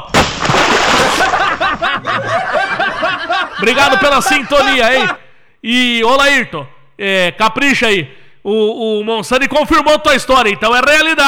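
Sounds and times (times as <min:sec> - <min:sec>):
bucket of water splashed on someone: 0:00.0 - 0:02.1
several people snickering and laughing: 0:00.8 - 0:05.2
speech: 0:03.6 - 0:11.2.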